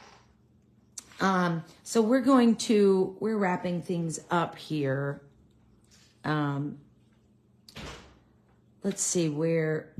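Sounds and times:
speech: 1.2 - 5.3, 6.2 - 6.8, 8.8 - 9.9
door swinging shut with a soft thud: 7.7 - 8.2.

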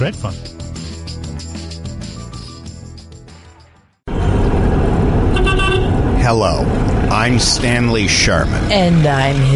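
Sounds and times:
speech: 0.0 - 0.6, 6.3 - 9.5
music: 0.0 - 4.1
car traffic noise: 4.1 - 9.5
car horn toot: 5.3 - 6.0.

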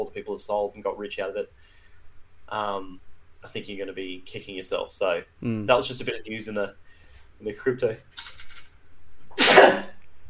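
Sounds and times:
speech: 0.0 - 1.8, 2.5 - 6.8, 7.4 - 8.3
loud sneeze after a breathy intake: 9.4 - 10.0.

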